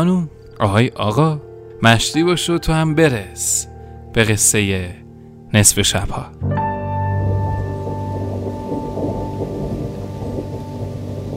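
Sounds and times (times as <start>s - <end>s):
speech: 0.0s - 6.6s
deep rumbling roll of thunder: 7.1s - 11.3s
steady rain: 7.2s - 11.3s.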